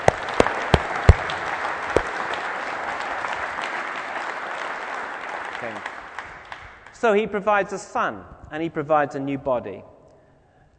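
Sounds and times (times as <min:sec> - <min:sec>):
soft steady crowd noise: 0:00.0 - 0:06.5
congregation applauding: 0:00.0 - 0:07.0
speech: 0:07.0 - 0:09.9.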